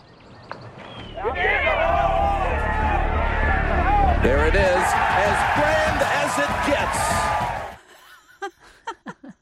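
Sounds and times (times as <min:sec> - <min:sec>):
golf gallery yelling and cheering: 0:01.0 - 0:07.8.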